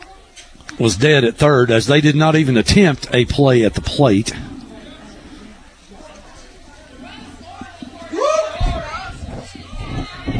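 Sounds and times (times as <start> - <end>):
speech: 0.7 - 4.4
stadium crowd at a baseball game yelling and murmuring: 8.0 - 10.3.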